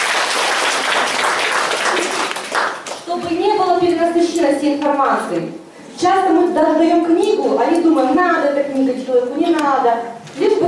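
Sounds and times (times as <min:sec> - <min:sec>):
audience applause during a spoken presentation: 0:00.0 - 0:03.1
speech: 0:03.2 - 0:10.6.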